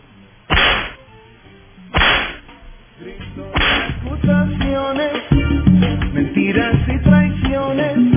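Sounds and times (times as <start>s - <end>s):
whip lashes cracking: 0.5s - 1.0s, 2.0s - 2.5s, 3.6s - 4.0s
speech: 4.2s - 8.0s.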